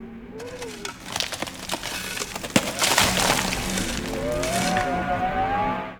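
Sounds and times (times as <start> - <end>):
shovel: 0.4 - 5.0.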